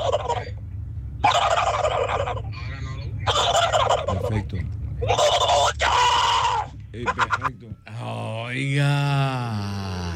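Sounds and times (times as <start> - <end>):
person imitating a turkey gobble: 0.0 - 0.5, 1.2 - 2.5, 3.2 - 4.2, 5.0 - 7.5
low hum: 0.0 - 10.1.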